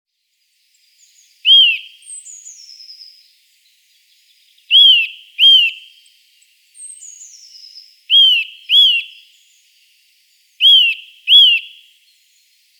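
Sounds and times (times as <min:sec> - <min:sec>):
Eurasian nuthatch Sitta europaea giving loud high whistled notes: 0:01.4 - 0:02.7, 0:04.7 - 0:05.9, 0:08.1 - 0:09.2, 0:10.6 - 0:11.8.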